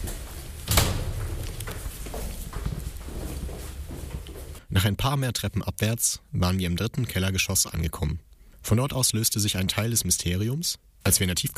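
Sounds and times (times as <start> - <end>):
door shut quickly with a sharp loud thud: 0.0 - 2.2
rustling: 0.0 - 4.6
speech: 4.8 - 11.5.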